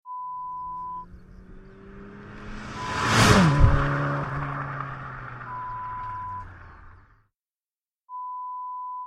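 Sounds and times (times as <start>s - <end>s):
car driving by: 0.6s - 7.2s.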